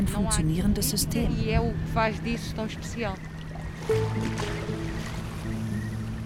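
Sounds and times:
small motorboat engine humming on open water: 0.0 - 6.2
speech: 0.1 - 5.6
faint water splashing: 1.5 - 6.2.

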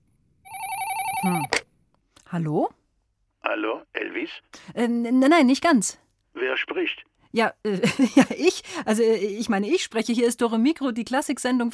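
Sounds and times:
telephone ringing with electronic trill: 0.4 - 1.6
speech: 1.2 - 1.6, 2.3 - 2.8, 3.5 - 11.7.

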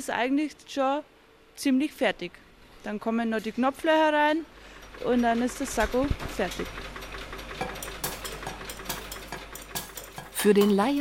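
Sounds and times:
speech: 0.0 - 7.0, 10.4 - 10.9
sewing machines whirring in a sewing workshop making jackets: 4.5 - 10.9.

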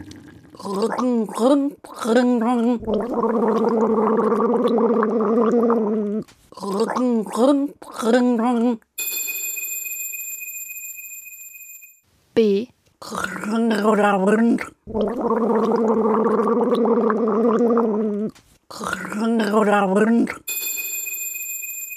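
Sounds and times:
person gargling a melody: 0.0 - 8.4, 13.0 - 20.5
speech: 0.6 - 8.9, 12.4 - 17.9, 18.7 - 20.5
brief ringing bell-like tone: 9.0 - 12.0, 20.5 - 21.9.

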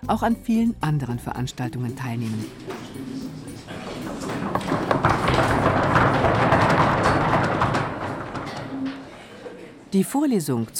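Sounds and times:
speech: 0.1 - 3.1, 9.9 - 10.7
roomful of people knocking on wooden desks in applause: 2.7 - 9.1.

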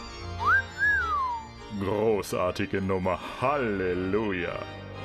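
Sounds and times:
two-note whistle: 0.4 - 1.5
speech: 1.8 - 4.8.

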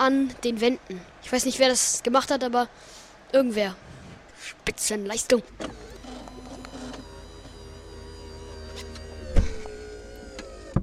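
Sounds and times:
speech: 0.0 - 5.9
outside broadcast van door mechanical clunks and clicks: 5.6 - 10.8
outside broadcast van powered door motor whirring: 5.6 - 10.8.

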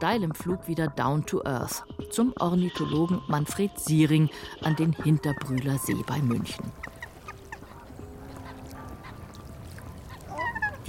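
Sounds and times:
speech: 0.0 - 7.0
outdoor ambience at a lake: 0.0 - 10.8
geese honking at a lake shore: 4.7 - 10.8
higher-pitched goose cries: 6.8 - 10.8.

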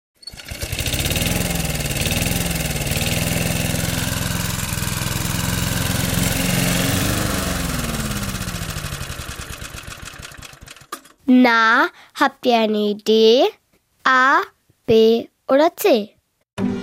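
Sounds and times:
lawn mower engine running: 0.2 - 11.2
speech: 11.3 - 16.7.

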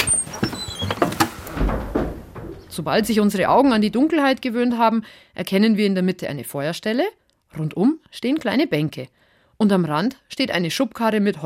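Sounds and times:
door of a small hut being opened in minus 20 degree cold: 0.0 - 4.4
speech: 2.8 - 11.4.

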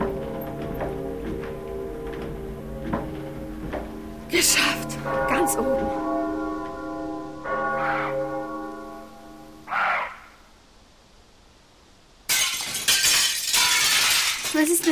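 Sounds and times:
resonant bell tones: 0.0 - 9.6
speech: 4.3 - 6.2
window panes shattering: 12.3 - 14.9.

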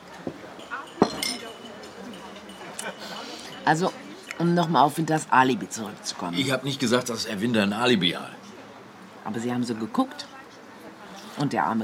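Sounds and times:
voices murmuring quietly: 0.0 - 11.8
glasses clinking in a toast: 0.1 - 4.8
speech: 3.7 - 8.4, 9.2 - 10.3, 11.4 - 11.8.

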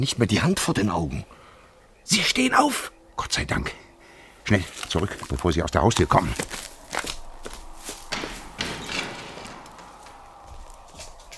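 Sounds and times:
speech: 0.0 - 1.4, 2.1 - 3.8, 4.4 - 6.7
footsteps coming along a garden path: 4.5 - 8.6, 9.6 - 11.3.

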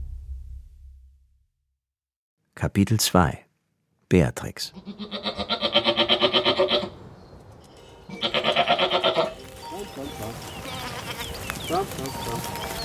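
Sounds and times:
speech: 2.6 - 3.4, 4.1 - 5.5
goat bleating: 4.7 - 7.0, 8.1 - 9.4, 10.3 - 12.8
busy farmyard sounds: 4.7 - 12.8.

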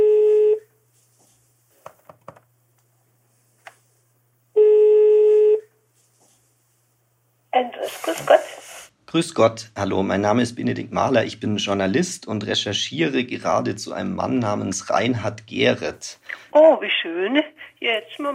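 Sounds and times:
telephone line ringing tone: 0.0 - 0.6, 4.6 - 5.6
speech: 8.1 - 8.4, 9.1 - 18.3.

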